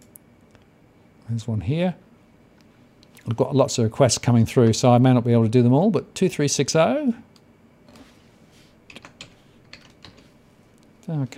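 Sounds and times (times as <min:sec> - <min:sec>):
faint hum: 0:00.0 - 0:11.3
speech: 0:01.3 - 0:02.0, 0:03.3 - 0:07.3, 0:11.1 - 0:11.3
typing on a computer keyboard with a sticky key: 0:08.9 - 0:10.3.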